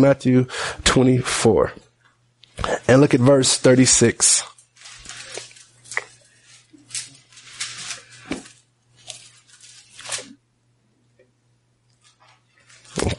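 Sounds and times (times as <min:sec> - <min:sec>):
speech: 0:00.0 - 0:01.8, 0:02.6 - 0:04.5
Bible pages being turned: 0:03.0 - 0:10.4, 0:12.0 - 0:13.1.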